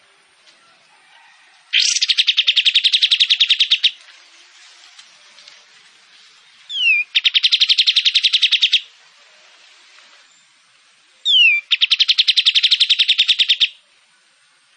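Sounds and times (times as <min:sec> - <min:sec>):
kapas tembak songbird singing shooting-style buzzy trills: 0:01.7 - 0:04.0, 0:06.7 - 0:08.9, 0:11.2 - 0:13.8.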